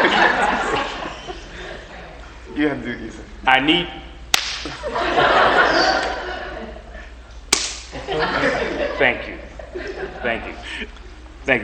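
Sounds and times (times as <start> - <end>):
laughter: 0.0 - 2.4, 4.6 - 7.2, 7.8 - 11.2
crowd noise: 0.0 - 3.4, 4.1 - 11.6
speech: 2.6 - 4.0, 9.0 - 9.4, 10.2 - 11.6
slap on a person: 4.3 - 4.8, 7.5 - 8.0.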